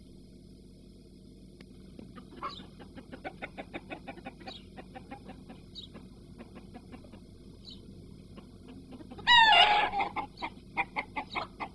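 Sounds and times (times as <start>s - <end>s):
low background hum: 0.0s - 11.7s
chickens clucking: 1.9s - 11.7s
chicken squawking: 2.2s - 7.2s, 8.7s - 11.7s.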